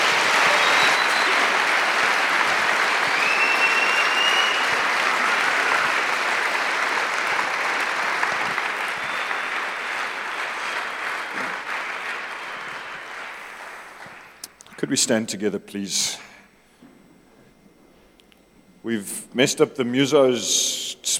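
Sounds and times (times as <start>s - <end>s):
large audience applause: 0.0s - 14.4s
speech: 14.9s - 16.3s, 18.9s - 20.7s.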